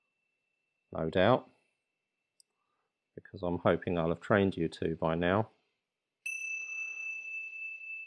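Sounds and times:
speech: 0.9 - 1.5, 3.3 - 5.6
single meditation bell struck and ringing: 6.2 - 8.0.

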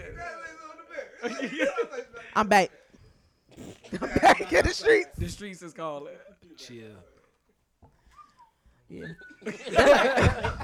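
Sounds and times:
group laughing loudly: 0.9 - 2.2, 3.9 - 4.8, 9.4 - 10.6
speech: 1.2 - 2.8, 3.9 - 7.1, 8.9 - 10.6
thin whistle: 8.1 - 8.6.

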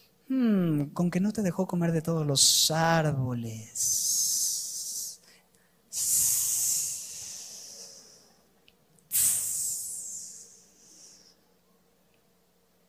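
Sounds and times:
speech: 0.3 - 4.2
person imitating a serpent with snake-like hisses: 3.8 - 5.2, 5.9 - 8.4, 9.1 - 11.4.

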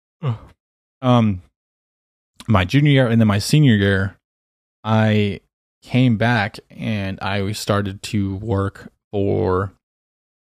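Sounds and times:
voiced yawn: 0.2 - 0.6
speech: 0.2 - 1.5, 2.5 - 4.2, 4.8 - 9.8.

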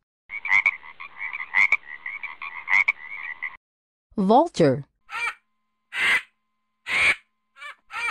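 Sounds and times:
frog croaking in a steady rapid trill: 0.3 - 3.6, 5.1 - 6.3, 6.9 - 8.0
speech: 4.2 - 4.9.

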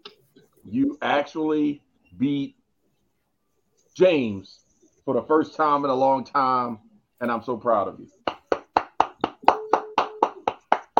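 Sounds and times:
speech: 0.7 - 2.6, 4.0 - 8.2
sharp hand claps in an even rhythm: 8.3 - 10.9.

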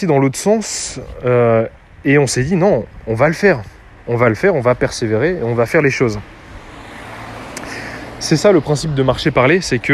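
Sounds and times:
speech: 0.0 - 6.4, 8.2 - 9.9
car passing on a street: 2.8 - 9.9.

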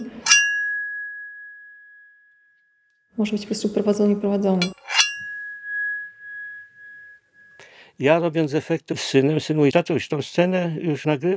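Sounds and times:
knife rubbed against a large-bladed cleaver: 0.0 - 2.1, 4.6 - 7.6
speech: 3.2 - 4.9, 8.0 - 11.3.

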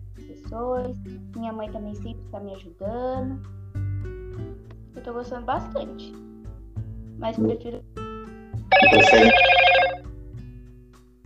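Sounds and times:
speech: 0.5 - 3.6, 5.0 - 6.3, 7.2 - 8.0, 8.9 - 9.5
telephone ringing with trilling electronic tones: 8.7 - 10.0.

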